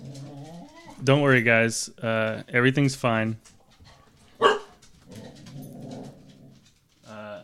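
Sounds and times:
dog growling: 0:00.0 - 0:01.0, 0:05.0 - 0:06.8
speech: 0:01.0 - 0:03.6
dogs barking: 0:04.4 - 0:05.4.

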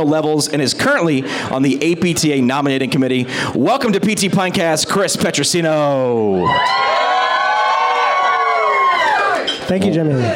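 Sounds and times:
speech: 0:00.0 - 0:07.2, 0:09.7 - 0:10.3
loud crowd cheering and whooping: 0:06.3 - 0:10.3.

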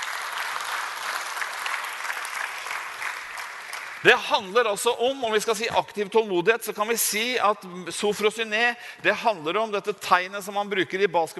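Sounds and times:
audience applause: 0:00.0 - 0:04.3
speech: 0:04.0 - 0:11.3.

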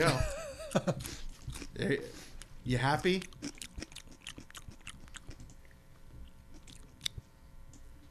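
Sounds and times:
speech: 0:00.0 - 0:03.6
raw carrot being chewed: 0:01.0 - 0:01.8, 0:03.2 - 0:07.3.

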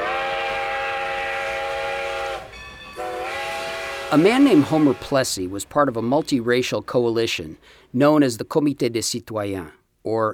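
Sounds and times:
train horn blowing at a railway station: 0:00.0 - 0:05.4
speech: 0:04.1 - 0:10.3.

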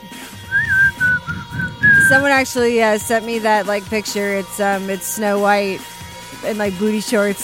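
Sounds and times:
person whistling a tune: 0:00.5 - 0:02.4
speech: 0:02.1 - 0:07.4.

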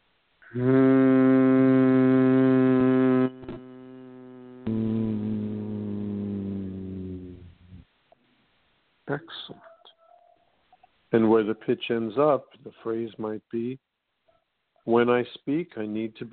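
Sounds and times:
speech: 0:00.5 - 0:01.0, 0:11.2 - 0:13.9, 0:14.9 - 0:16.3
person humming a long steady low nasal tone: 0:00.5 - 0:07.8.

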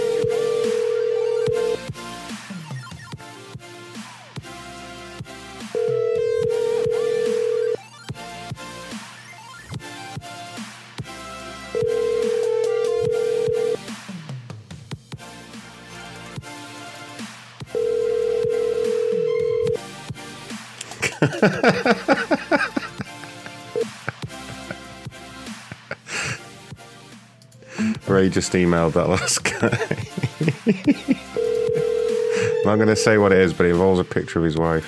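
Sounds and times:
telephone ringing unanswered: 0:00.0 - 0:01.9, 0:05.8 - 0:07.9, 0:11.7 - 0:13.8, 0:17.8 - 0:19.8, 0:31.3 - 0:33.2
busy music: 0:00.0 - 0:34.8
laughter: 0:20.8 - 0:26.4, 0:29.1 - 0:32.7
speech: 0:21.3 - 0:22.5, 0:28.2 - 0:31.3, 0:32.7 - 0:34.8.

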